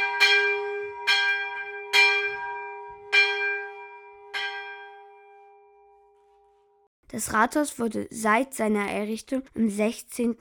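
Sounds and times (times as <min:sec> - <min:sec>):
single church bell tolling: 0:00.0 - 0:06.3
speech: 0:07.1 - 0:10.3.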